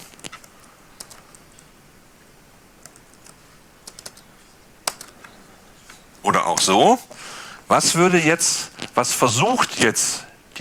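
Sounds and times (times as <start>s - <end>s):
low hiss: 0.0s - 10.5s
computer keyboard clicks as a shell command is typed: 0.2s - 1.4s, 2.8s - 4.2s, 4.8s - 5.2s
speech: 6.2s - 10.5s.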